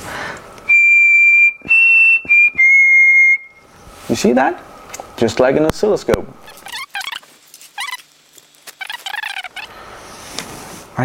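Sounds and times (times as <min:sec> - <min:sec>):
person whistling into a computer microphone: 0:00.7 - 0:03.7
speech: 0:04.2 - 0:06.4.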